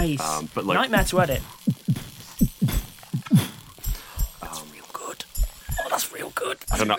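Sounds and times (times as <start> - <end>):
speech: 0.0 - 1.8, 6.8 - 6.9
person imitating a heartbeat with low lub-dub thumps: 1.0 - 4.6, 5.3 - 6.0
faint metallic jingle: 1.1 - 5.9.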